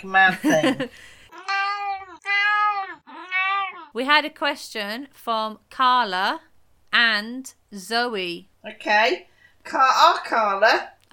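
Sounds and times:
speech: 0:00.0 - 0:01.2, 0:03.9 - 0:11.0
cat meowing: 0:01.3 - 0:04.0.

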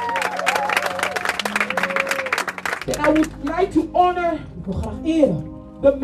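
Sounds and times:
crowd applauding: 0:00.0 - 0:03.6
speech: 0:02.9 - 0:06.0.

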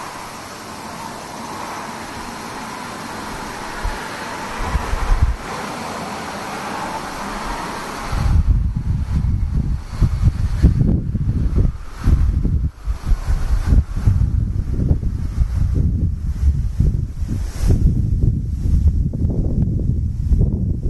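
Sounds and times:
cicadas droning: 0:00.0 - 0:20.8
wind noise: 0:00.0 - 0:20.8.

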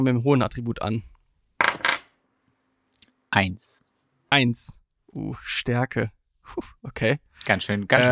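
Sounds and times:
speech: 0:00.0 - 0:01.2, 0:03.3 - 0:08.1
small six-sided die clattering on a hard tabletop: 0:01.6 - 0:02.1.

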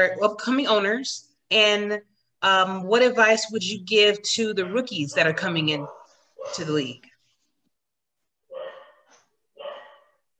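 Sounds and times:
speech: 0:00.0 - 0:07.1
pet dog barking: 0:04.6 - 0:06.8, 0:08.5 - 0:10.3.

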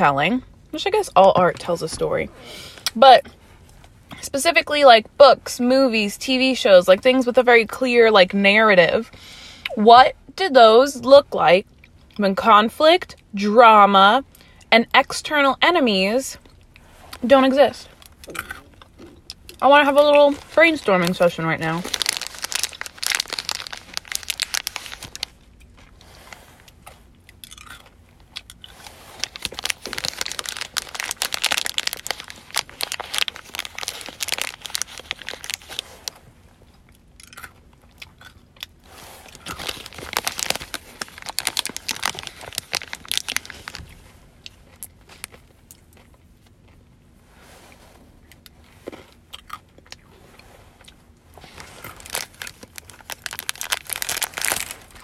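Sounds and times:
speech: 0:00.0 - 0:03.4, 0:04.1 - 0:16.4, 0:17.2 - 0:18.6, 0:19.6 - 0:22.0
M&M candies crunched while chewing: 0:18.0 - 0:46.8, 0:50.8 - 0:55.0.

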